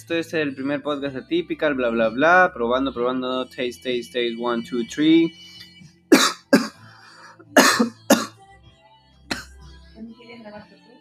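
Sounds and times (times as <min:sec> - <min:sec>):
speech: 0:00.0 - 0:06.2, 0:10.4 - 0:10.8
person coughing: 0:06.1 - 0:06.8, 0:07.6 - 0:08.3, 0:09.3 - 0:09.6.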